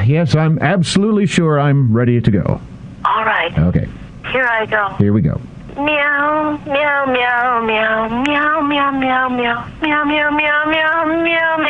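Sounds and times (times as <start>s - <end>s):
speech: 0.1s - 11.6s
person singing like a meowing cat: 5.8s - 11.6s.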